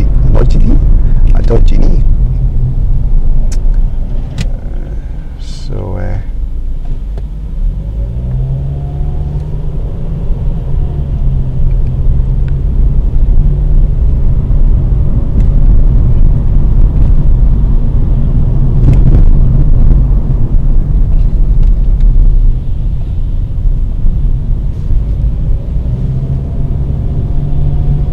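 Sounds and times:
Ford Focus engine and road noise while driving: 0.0 - 28.1.

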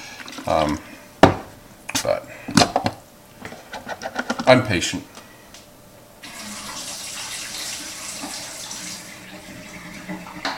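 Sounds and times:
speech: 0.5 - 0.9, 2.0 - 2.6, 4.5 - 5.1
running water washing developed black-and-white film in a processing tank: 6.2 - 10.5.

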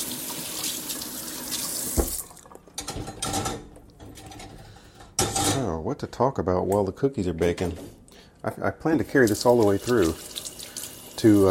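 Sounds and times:
water running from a tap into a kitchen sink as dishes are rinsed: 0.0 - 2.8, 9.1 - 11.4
dishes knocking and splashing in a kitchen sink: 1.9 - 5.6
speech: 5.6 - 10.3, 11.2 - 11.4.

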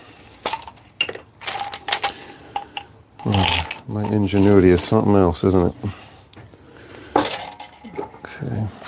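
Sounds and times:
loose metal screws clinking and rattling as a hand rummages through a pile: 0.4 - 4.6
speech: 3.2 - 6.0.

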